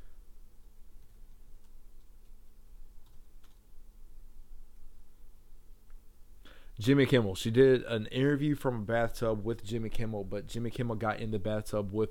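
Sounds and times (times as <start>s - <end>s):
steady hiss: 0.0s - 12.0s
typing on a computer keyboard: 1.0s - 3.6s
speech: 6.8s - 12.0s.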